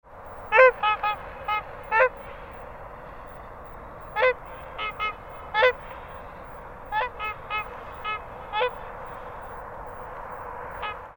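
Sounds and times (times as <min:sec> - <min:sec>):
trumpeter swan calling: 0:00.4 - 0:02.6, 0:04.0 - 0:09.0, 0:10.7 - 0:11.1.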